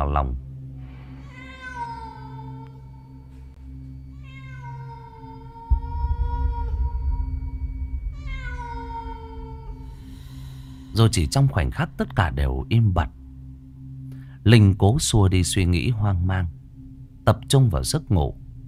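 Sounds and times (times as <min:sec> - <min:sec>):
speech: 0:00.0 - 0:00.5, 0:10.9 - 0:13.2, 0:14.4 - 0:16.6, 0:17.3 - 0:18.4
stray cats yowling at night: 0:01.2 - 0:02.8, 0:04.1 - 0:06.8, 0:08.2 - 0:10.0
low steady hum: 0:05.1 - 0:18.6
dull rumble: 0:05.6 - 0:13.1.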